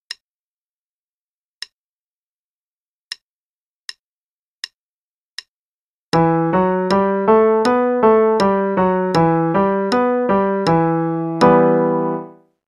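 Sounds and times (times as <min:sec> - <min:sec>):
E minor five-finger pattern: 0:06.2 - 0:12.4.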